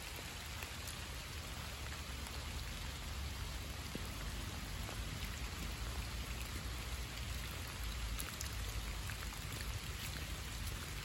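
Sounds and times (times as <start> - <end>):
rain falling over a park in October: 0.0 - 11.0.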